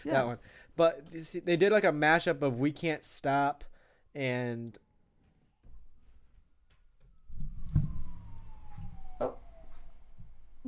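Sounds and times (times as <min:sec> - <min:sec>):
speech: 0:00.0 - 0:04.8
emergency siren wailing outside: 0:03.7 - 0:10.6.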